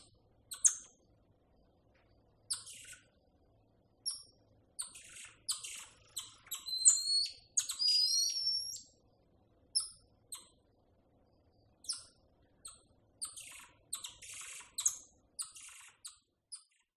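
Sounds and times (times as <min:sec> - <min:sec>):
tamarin calling with high chirps: 0:00.0 - 0:01.0, 0:02.4 - 0:03.2, 0:04.0 - 0:09.0, 0:09.7 - 0:10.7, 0:11.4 - 0:16.9
faint low background hum: 0:00.0 - 0:16.9.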